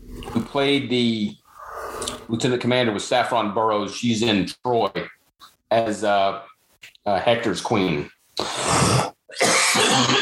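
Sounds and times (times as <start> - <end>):
speech: 0.5 - 1.4, 2.3 - 9.0
person coughing after swallowing wrong: 8.4 - 10.2.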